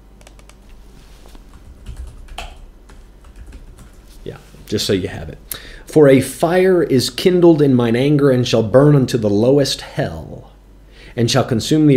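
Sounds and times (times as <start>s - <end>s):
faint hiss: 0.0s - 11.9s
typing on a computer keyboard: 0.2s - 0.6s, 1.5s - 4.0s
speech: 4.2s - 10.5s, 11.2s - 11.9s.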